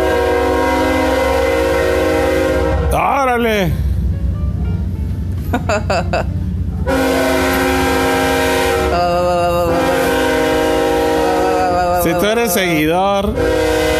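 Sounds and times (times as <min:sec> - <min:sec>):
train horn blaring in long sustained blasts: 0:00.0 - 0:03.1, 0:06.8 - 0:13.9
loud train rumbling past on tracks beside a home: 0:00.0 - 0:13.9
speech: 0:03.4 - 0:03.8, 0:05.5 - 0:07.0, 0:12.0 - 0:13.8
person exclaiming and laughing: 0:05.5 - 0:06.2, 0:08.9 - 0:10.1, 0:11.3 - 0:13.2.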